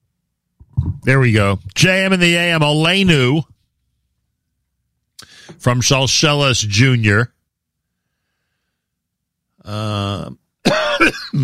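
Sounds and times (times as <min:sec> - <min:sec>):
speech: 0:01.0 - 0:03.5, 0:05.5 - 0:07.4, 0:09.6 - 0:10.4, 0:11.0 - 0:11.4
loud drawn-out voiced throat clearing: 0:10.1 - 0:11.4
raspy cough: 0:10.6 - 0:11.4.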